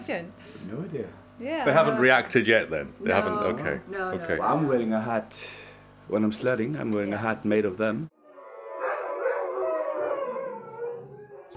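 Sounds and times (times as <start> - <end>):
speech: 0.0 - 8.1
dogs howling upstairs in a house: 8.2 - 11.5.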